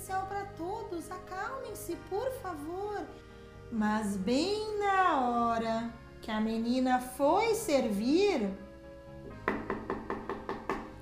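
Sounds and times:
speech: 0:00.9 - 0:08.6
knocking on a bedroom door: 0:09.3 - 0:10.9.

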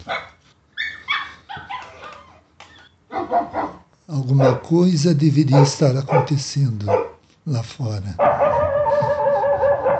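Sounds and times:
speech: 0:00.0 - 0:00.4, 0:04.1 - 0:08.7
several dogs barking with high yips and deeper barks: 0:00.0 - 0:02.4, 0:03.1 - 0:04.8, 0:05.4 - 0:07.2, 0:08.2 - 0:09.9.

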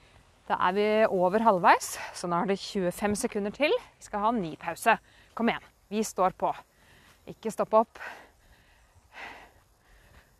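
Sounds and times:
speech: 0:00.5 - 0:08.2
heavy rhythmic breathing from someone running: 0:01.8 - 0:02.4, 0:05.0 - 0:05.8, 0:06.6 - 0:10.3.

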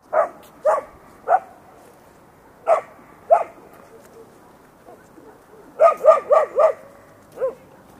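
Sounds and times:
dog barking: 0:00.1 - 0:01.6, 0:02.6 - 0:04.4, 0:05.5 - 0:07.6.

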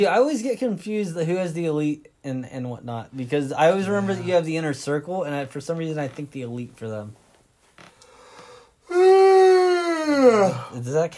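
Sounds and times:
speech: 0:00.0 - 0:07.2, 0:10.1 - 0:11.1
person yawning: 0:08.9 - 0:10.8.

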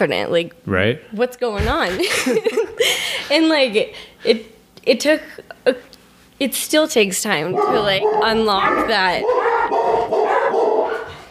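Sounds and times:
speech: 0:00.0 - 0:09.6
laughter: 0:01.6 - 0:03.4
two dogs barking and yipping: 0:07.3 - 0:11.2.

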